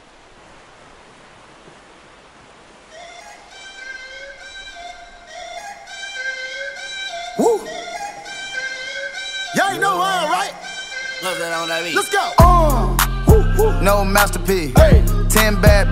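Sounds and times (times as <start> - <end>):
speech: 7.4 - 7.9, 9.7 - 10.6, 11.2 - 13.0, 13.8 - 15.9
hip-hop track with synth tones and vocal ad-libs: 9.2 - 15.9
heavy booming bass beat: 12.4 - 15.9.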